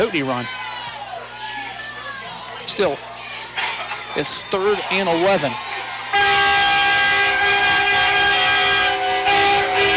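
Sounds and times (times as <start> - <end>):
speech: 0.0 - 0.6, 2.7 - 3.1, 4.2 - 5.8
broad noise in a stadium: 0.0 - 9.9
loud deep brassy foghorn blast in a stadium: 6.1 - 9.9.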